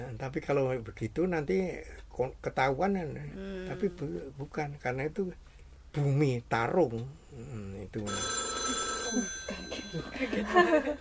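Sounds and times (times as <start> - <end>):
speech: 0.2 - 10.9
phone ringtone: 8.1 - 10.2.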